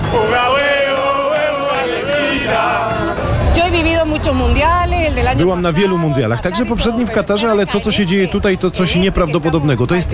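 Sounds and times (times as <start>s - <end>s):
crowd of Argentine football fans chanting in the rain in Times Square: 0.0s - 4.7s
speech: 4.2s - 10.1s.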